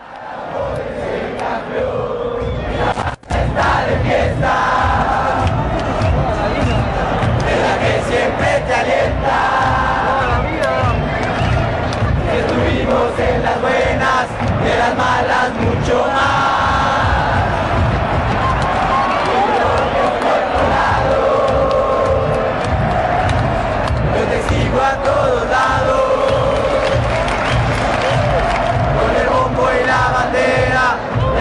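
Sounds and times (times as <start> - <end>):
large stadium crowd of football supporters chanting a song: 0.0 - 31.3.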